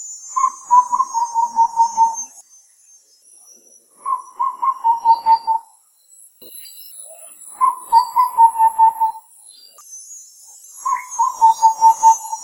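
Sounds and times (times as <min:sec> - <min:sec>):
Chestnut-winged Babbler calls in Sabah Borneo: 0:00.4 - 0:02.3, 0:04.0 - 0:05.7, 0:07.5 - 0:09.3, 0:10.8 - 0:12.4.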